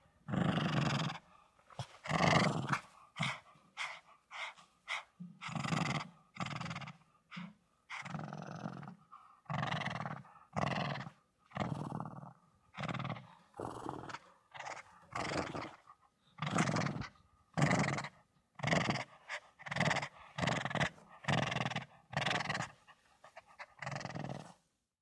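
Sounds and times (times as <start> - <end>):
Shih Tzu dog growling: 0.3 - 24.6.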